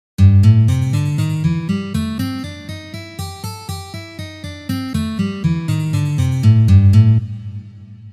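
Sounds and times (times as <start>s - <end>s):
blues scales in A minor: 0.4s - 7.2s.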